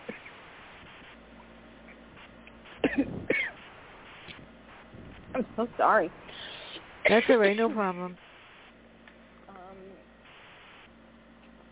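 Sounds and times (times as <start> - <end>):
person coughing: 2.8 - 3.6, 7.1 - 7.6
speech: 3.0 - 3.3, 5.4 - 6.2, 7.0 - 8.2.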